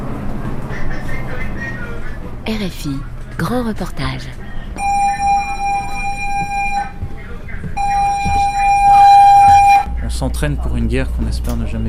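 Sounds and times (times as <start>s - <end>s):
bustle of personnel evacuating: 0.0s - 11.8s
voices of personnel evacuating: 0.0s - 11.8s
speech: 2.5s - 4.6s, 10.1s - 11.8s
warship alarm blaring a piercing electronic tone during an emergency drill: 4.8s - 7.1s, 7.7s - 10.0s.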